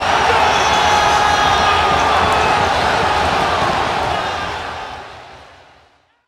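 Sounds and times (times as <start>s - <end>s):
crowd: 0.0s - 6.2s.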